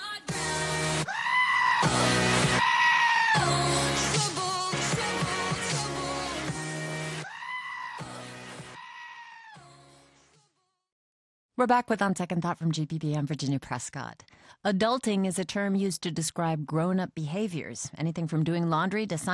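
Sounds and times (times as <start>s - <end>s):
upbeat pop song remix: 0.0s - 1.2s, 1.8s - 2.6s, 3.3s - 7.2s, 8.0s - 8.8s
goats screaming in loud drawn-out bleats: 1.1s - 3.5s, 7.2s - 8.2s, 8.8s - 9.6s
speech: 11.6s - 19.3s.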